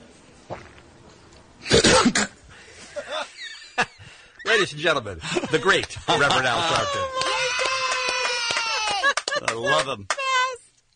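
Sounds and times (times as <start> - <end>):
man coughing in harsh bursts: 1.6 - 2.4
laughter: 2.9 - 10.0
speech: 4.6 - 7.2, 9.6 - 10.2.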